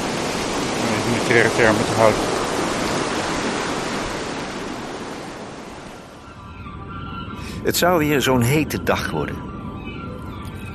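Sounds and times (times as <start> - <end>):
surf washing onto a beach: 0.0 - 6.1
speech: 1.3 - 2.3, 7.6 - 9.5.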